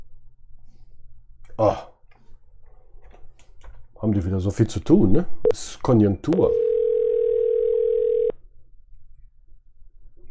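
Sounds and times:
speech: 1.6s - 1.9s, 4.0s - 6.6s
telephone ringback tone while placing a call: 6.5s - 8.3s.

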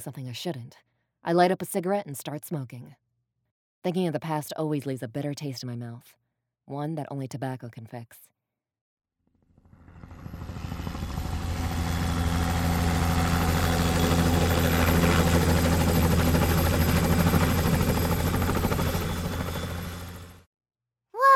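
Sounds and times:
speech: 0.0s - 3.0s, 3.8s - 8.3s
helicopter flying close overhead with rotor thump and engine drone: 9.6s - 20.5s.

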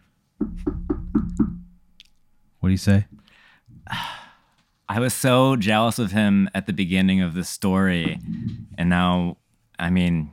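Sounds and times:
firm knocking on a wooden door: 0.4s - 1.8s
speech: 2.7s - 3.2s, 4.9s - 10.3s.

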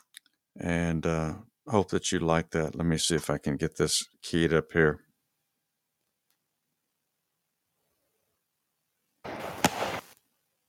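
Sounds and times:
speech: 0.6s - 5.1s
firework hissing and crackling: 9.2s - 10.2s.

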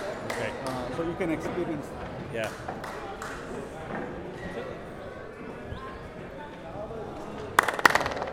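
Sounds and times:
sharp hand claps echoing through a stone fort: 0.0s - 4.1s, 7.5s - 8.3s
low crowd murmur and voices: 0.0s - 8.3s
speech: 0.4s - 4.2s.

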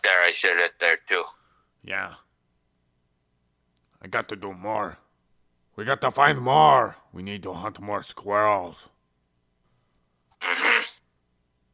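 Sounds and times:
speech: 0.0s - 2.3s, 4.0s - 5.0s, 5.8s - 8.9s, 10.4s - 11.0s
belch: 10.4s - 11.0s.

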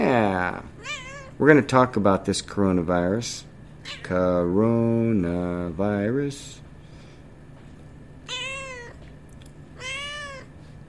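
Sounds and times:
low steady hum: 0.0s - 10.8s
speech: 0.1s - 6.6s
cat meowing: 0.8s - 1.4s, 3.8s - 4.2s, 8.3s - 9.0s, 9.8s - 10.5s.

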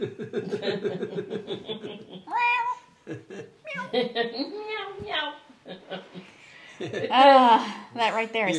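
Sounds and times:
laughter: 0.0s - 2.3s, 3.1s - 4.4s
stray cat meowing: 2.3s - 2.9s, 3.7s - 3.9s
speech: 7.1s - 8.5s.

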